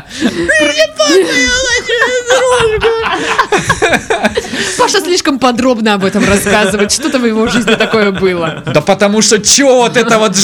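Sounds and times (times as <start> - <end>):
laughter: 0.0 - 5.1, 6.0 - 10.4
speech: 0.2 - 10.4
child crying in high-pitched wails: 0.5 - 3.0.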